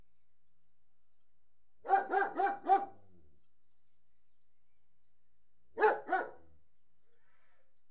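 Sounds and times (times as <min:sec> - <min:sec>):
large German Shepherd barking indoors: 0:01.8 - 0:03.0, 0:05.8 - 0:06.5.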